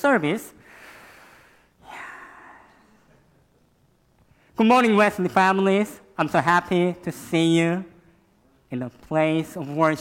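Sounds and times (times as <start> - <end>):
speech: 0.0 - 0.6, 4.6 - 7.9, 8.7 - 9.9
heavy breath rushing into the microphone: 0.6 - 2.7.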